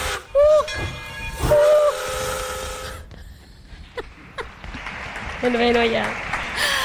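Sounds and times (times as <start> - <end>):
departing steam train whistle blasts: 0.0 - 3.1
speech: 5.4 - 6.7.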